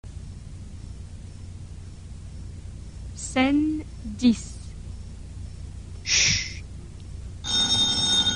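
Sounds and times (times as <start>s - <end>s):
speech: 3.2s - 4.6s
telephone bell ringing: 7.4s - 8.3s.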